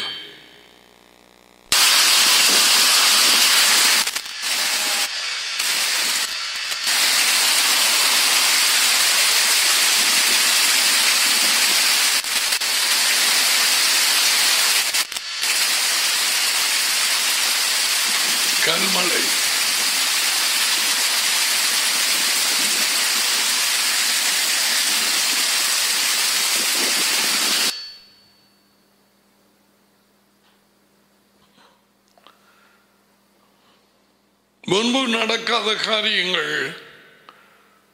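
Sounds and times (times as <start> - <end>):
hail pouring down in India: 1.7 - 27.7
speech: 35.3 - 36.8.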